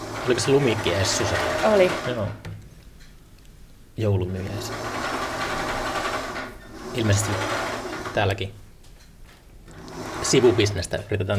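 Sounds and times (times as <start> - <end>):
sewing machine running: 0.0 - 2.4, 4.3 - 8.5, 9.7 - 11.0
speech: 0.2 - 2.5, 4.0 - 4.9, 7.0 - 7.6, 8.2 - 8.6, 10.3 - 11.3.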